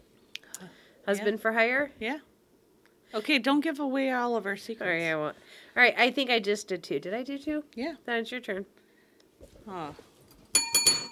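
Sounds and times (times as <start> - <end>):
speech: 0.6 - 2.3, 3.1 - 8.8, 9.6 - 10.1
small hand bell ringing: 10.6 - 11.0.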